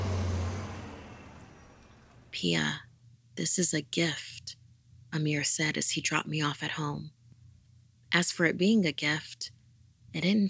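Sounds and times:
express bus speeding past with deep engine hum and road noise: 0.0 - 2.4
speech: 2.4 - 7.2, 8.1 - 10.4.

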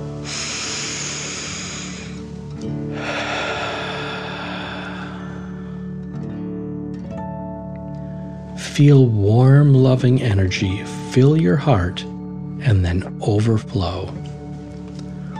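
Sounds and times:
deep breathing in and out during a calming meditation: 0.0 - 6.5
soft tonal backdrop: 0.0 - 15.3
speech: 8.8 - 14.4.

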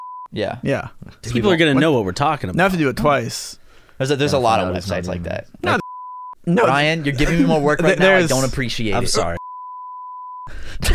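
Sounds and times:
censor bleep tone: 0.0 - 0.3, 5.8 - 6.4, 9.4 - 10.5
speech: 0.3 - 5.8, 6.4 - 9.4.

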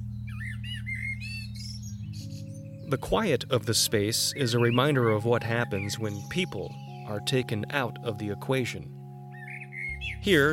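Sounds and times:
several birds chirping and warbling on an empty university campus: 0.0 - 10.5
speech: 2.9 - 9.0, 10.2 - 10.5.

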